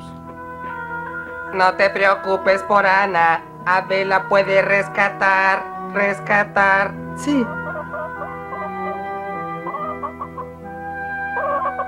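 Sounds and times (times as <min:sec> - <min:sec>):
steady sustained tonal background: 0:00.0 - 0:11.8
speech: 0:01.5 - 0:07.6
hens clucking: 0:07.4 - 0:11.8.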